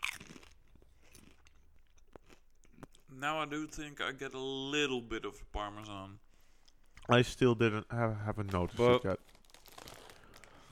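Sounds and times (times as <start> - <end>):
hand-cooked potato crisps being bitten and chewed: 0.0 - 3.0, 8.4 - 10.6
speech: 3.2 - 6.2, 7.1 - 9.2.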